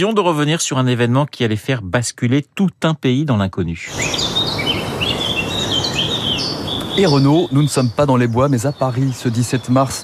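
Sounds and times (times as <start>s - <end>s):
speech: 0.0s - 4.7s, 7.0s - 10.0s
steady broadband hiss of ambience: 3.7s - 10.0s
birds singing and chirping in a quiet city: 3.8s - 10.0s.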